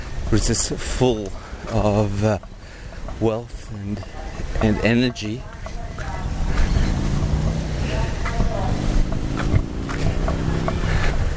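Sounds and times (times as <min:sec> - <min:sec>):
car engine rumbling while reversing: 0:00.0 - 0:11.3
outdoor noise: 0:00.0 - 0:11.3
speech: 0:00.3 - 0:02.6, 0:03.2 - 0:05.5
voices: 0:03.2 - 0:11.3.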